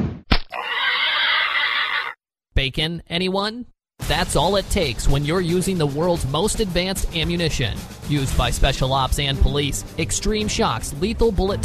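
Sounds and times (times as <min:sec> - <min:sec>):
500-pound wild boar squealing: 0:00.5 - 0:02.2
speech: 0:02.6 - 0:11.6.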